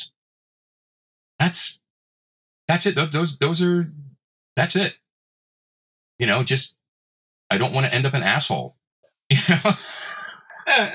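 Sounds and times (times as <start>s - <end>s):
speech: 1.5s - 1.8s, 2.7s - 4.0s, 4.6s - 5.0s, 6.2s - 6.8s, 7.5s - 10.0s, 10.6s - 10.9s
laughter: 9.3s - 10.9s
person coughing harshly with a raspy wheeze: 9.8s - 10.9s.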